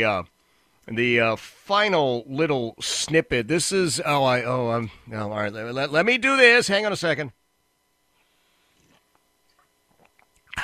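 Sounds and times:
speech: 0.0 - 7.4
faint mouth clicks from sipping a drink: 9.5 - 10.6.

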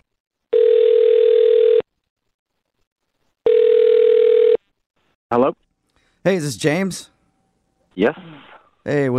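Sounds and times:
telephone ringing tone: 0.5 - 1.9, 3.5 - 4.6
speech: 5.3 - 5.6, 6.3 - 7.1, 7.9 - 9.1.

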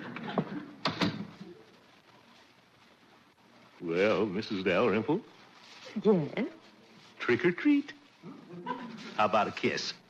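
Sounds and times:
door opening: 0.2 - 1.4
speech: 3.8 - 6.6, 7.2 - 10.0.

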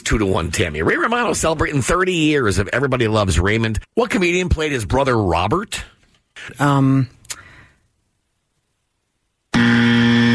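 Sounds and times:
speech: 0.1 - 7.2
quiz show time-up buzzer: 9.5 - 10.3.

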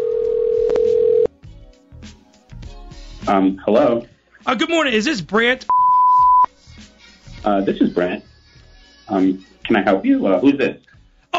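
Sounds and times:
telephone dial tone: 0.0 - 1.3
speech: 3.3 - 5.8, 7.4 - 8.3, 9.1 - 11.3.

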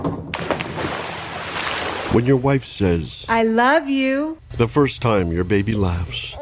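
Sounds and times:
splash of someone diving into a swimming pool: 0.3 - 2.4
steady rush of churning bubbling water in a swimming pool: 0.3 - 2.7
speech: 2.1 - 6.4.

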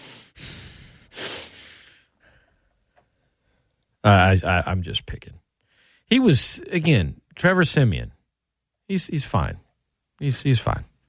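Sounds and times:
heavy noisy breathing against the microphone: 0.0 - 3.7
speech: 4.0 - 5.4, 6.1 - 8.2, 8.9 - 9.6, 10.2 - 10.9.

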